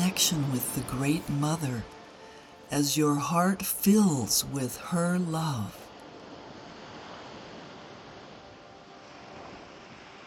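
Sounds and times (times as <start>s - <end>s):
ocean waves breaking on a beach: 0.0s - 10.2s
speech: 0.2s - 2.0s, 2.7s - 5.8s
faint wind-like hiss: 5.8s - 10.2s.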